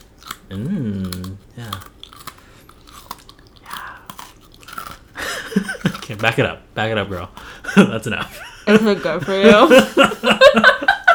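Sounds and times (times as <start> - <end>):
crunchy chewing of a crisp cookie: 0.0 - 7.6
speech: 0.5 - 1.9, 6.2 - 11.0
laughter: 5.2 - 6.1, 7.6 - 11.1.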